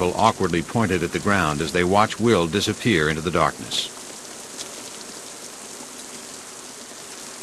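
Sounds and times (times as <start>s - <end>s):
speech: 0.0s - 4.0s
heavy rain falling on a muddy town street: 0.0s - 7.4s.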